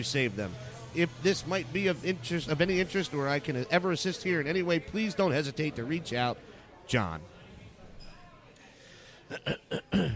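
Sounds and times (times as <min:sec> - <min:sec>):
speech: 0:00.0 - 0:07.3, 0:09.3 - 0:10.1
person clearing throat in short rough bursts: 0:09.3 - 0:10.1.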